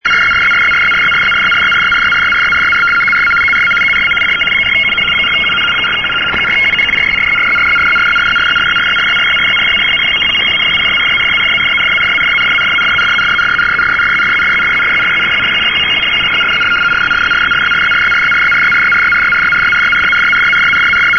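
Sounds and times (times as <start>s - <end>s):
75 baud radioteletype signal: 0.0s - 21.1s.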